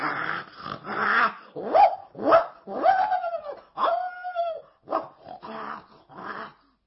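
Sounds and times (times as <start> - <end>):
dogs barking, yelping and growling at a bear: 0.0 - 6.8.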